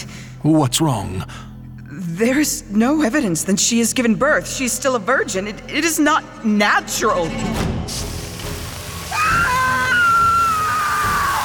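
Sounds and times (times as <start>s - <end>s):
speech: 0.4s - 8.1s
steady rushing watery background: 7.9s - 11.4s
woman screaming in agony: 9.1s - 11.4s.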